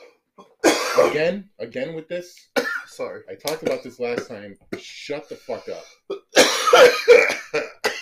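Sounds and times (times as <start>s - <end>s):
harsh raspy coughing fit: 0.4s - 1.3s, 2.6s - 3.0s, 3.6s - 7.9s
speech: 1.0s - 7.7s.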